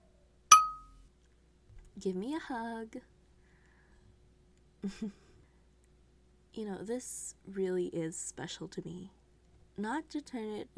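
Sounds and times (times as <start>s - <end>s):
glasses clinking in a toast: 0.5s - 0.8s
speech: 2.0s - 3.2s, 4.8s - 5.2s, 6.6s - 9.2s, 9.8s - 10.7s.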